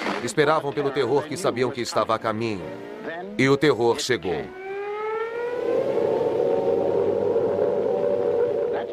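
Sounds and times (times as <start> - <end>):
speech: 0.2 - 4.6
air raid siren in England during the Second World War wailing: 4.4 - 8.9.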